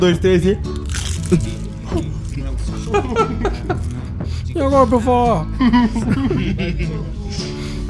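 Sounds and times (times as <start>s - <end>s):
speech: 0.0s - 2.1s, 2.9s - 3.8s, 4.6s - 7.8s
chewing noises: 0.7s - 4.1s
several people biting into crunchy food: 0.7s - 4.1s
laughter: 1.9s - 4.2s, 5.4s - 7.3s.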